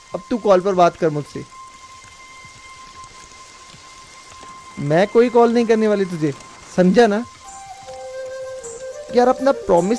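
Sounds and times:
steady rain falling: 0.0s - 9.9s
speech: 0.1s - 1.6s, 4.8s - 7.4s, 9.1s - 9.9s.

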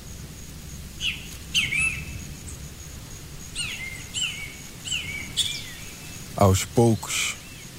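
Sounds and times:
bamboo grove swaying in the wind: 0.0s - 7.7s
great kiskadee singing in the forest: 1.0s - 2.2s, 3.6s - 7.7s
speech: 6.4s - 7.4s.

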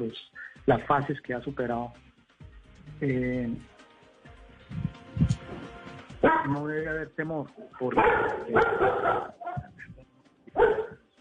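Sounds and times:
speech: 0.0s - 2.1s, 3.0s - 3.7s, 6.4s - 9.4s
dogs barking: 6.2s - 6.6s, 7.8s - 9.8s, 10.5s - 11.0s.

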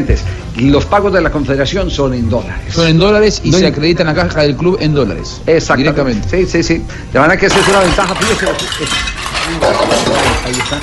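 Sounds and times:
speech: 0.0s - 10.8s
dishes and cutlery clinking while being washed: 7.4s - 10.8s.

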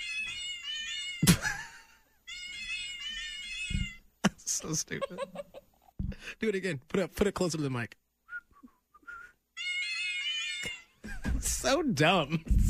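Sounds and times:
cat piano app playing synthetic meow notes in a tune: 0.0s - 1.3s, 2.3s - 4.0s, 9.6s - 10.9s
laughter: 1.2s - 2.0s, 4.2s - 5.9s
speech: 4.6s - 5.6s, 6.3s - 8.0s, 11.7s - 12.6s.

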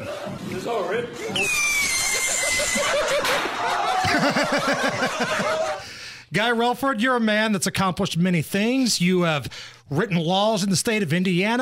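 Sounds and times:
noisy crowd: 0.0s - 5.8s
many people yelling excitedly and laughing: 0.0s - 5.9s
speech: 0.6s - 2.0s, 2.6s - 11.6s
thin whistling screech of a bottle rocket: 1.4s - 3.0s.

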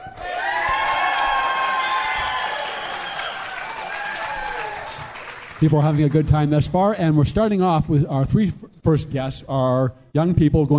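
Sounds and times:
live crowd clapping: 0.0s - 6.6s
speech: 5.6s - 10.7s.

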